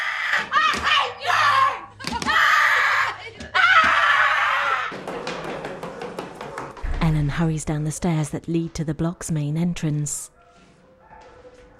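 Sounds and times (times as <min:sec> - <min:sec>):
woman screaming in a heated confrontation: 0:00.0 - 0:04.9
speech: 0:07.1 - 0:10.4.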